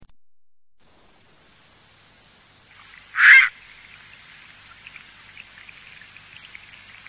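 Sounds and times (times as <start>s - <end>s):
faint hiss: 0.8s - 7.0s
bird harsh call in Higashiosaka Japan: 3.1s - 3.6s.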